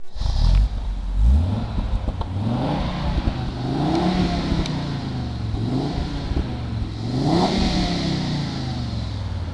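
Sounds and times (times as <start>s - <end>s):
Audi Cabrio 2.3l engine: 0.0s - 9.5s.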